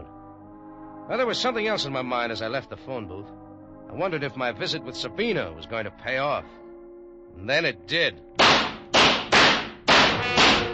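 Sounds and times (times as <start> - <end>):
speech: 1.1 - 6.6, 7.4 - 8.6
bullets striking a wall: 8.4 - 10.7
gunshots fired wildly: 8.4 - 10.7.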